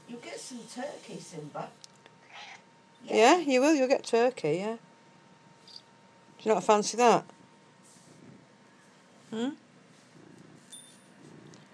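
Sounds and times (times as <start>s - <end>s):
speech: 0.1s - 1.9s, 3.0s - 4.9s, 6.4s - 7.4s, 9.3s - 9.6s
cat purring on a windowsill: 7.9s - 8.6s, 9.9s - 11.7s.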